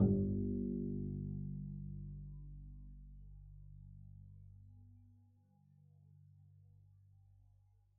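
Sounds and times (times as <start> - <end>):
double bass pizzicato G1 note: 0.0 - 1.6.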